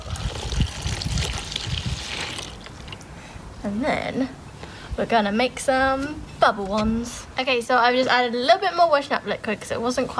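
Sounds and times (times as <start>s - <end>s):
homemade bubble mixture with glycerin pouring into a big washing-up bowl: 0.0s - 3.0s
speech: 3.6s - 4.4s, 5.0s - 10.1s.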